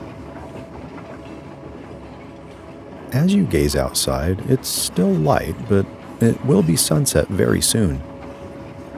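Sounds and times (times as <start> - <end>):
train rolling steadily on rails: 3.0 - 8.0
speech: 3.1 - 8.1.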